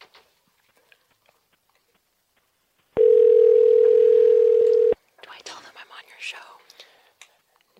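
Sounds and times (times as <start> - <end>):
telephone ringing tone of an outgoing phone call: 3.0 - 5.0.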